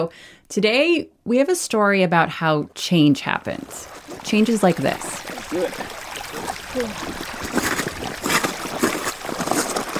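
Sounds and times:
speech: 0.0 - 7.6
meltwater river rushing across the Greenland ice sheet: 3.7 - 9.9.

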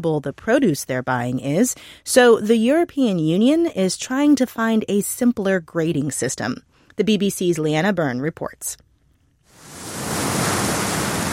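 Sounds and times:
speech: 0.0 - 8.8
North Atlantic ocean waves roaring below a clifftop in Ireland: 9.6 - 11.3.

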